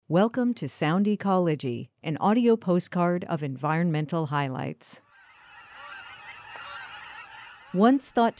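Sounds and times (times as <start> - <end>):
speech: 0.1 - 5.1, 7.7 - 8.3
Aleutian cackling geese flock honking in a dense chorus: 5.1 - 8.3.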